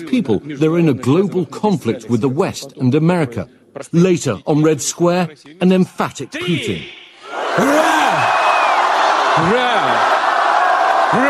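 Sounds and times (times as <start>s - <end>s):
speech: 0.0s - 7.0s, 7.6s - 8.0s, 9.4s - 10.1s
loud drawn-out shouts at a rally on Red Square: 6.9s - 11.2s
huge rally crowd on Red Square roaring and cheering: 7.1s - 11.2s.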